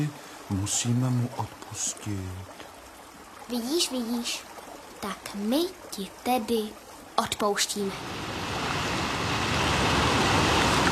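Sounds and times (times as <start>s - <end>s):
speech: 0.0s - 2.6s, 3.5s - 8.6s
ocean waves surging: 7.8s - 10.9s.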